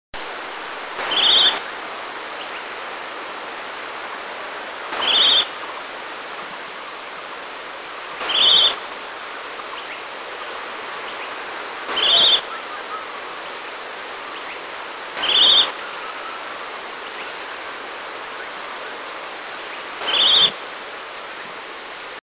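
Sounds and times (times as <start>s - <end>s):
Chestnut-bellied Nuthatch in Eaglenest India: 1.0s - 1.6s, 4.9s - 5.5s, 8.2s - 8.8s, 11.9s - 13.1s, 15.2s - 16.6s, 20.0s - 20.6s.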